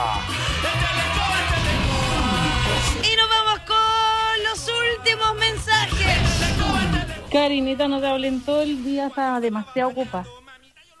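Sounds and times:
loud harsh shouted yell: 0:00.0 - 0:07.3
speech: 0:07.4 - 0:10.4.

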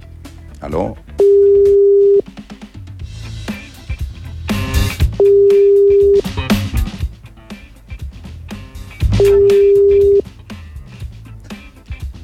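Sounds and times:
music: 0:00.0 - 0:12.2
ringback tones of an outgoing telephone call: 0:01.2 - 0:02.2, 0:05.2 - 0:06.3, 0:09.2 - 0:10.3.

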